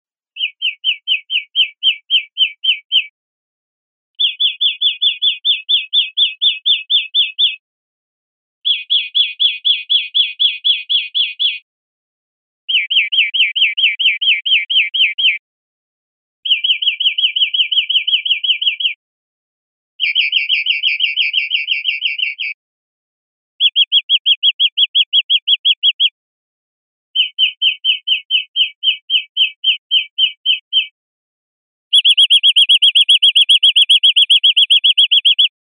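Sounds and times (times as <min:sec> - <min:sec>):
greenfinch song: 0:00.3 - 0:03.1, 0:04.2 - 0:07.6, 0:08.6 - 0:11.7, 0:12.7 - 0:15.4, 0:16.4 - 0:19.0, 0:20.0 - 0:22.5, 0:23.6 - 0:26.2, 0:27.1 - 0:31.0, 0:31.9 - 0:35.5.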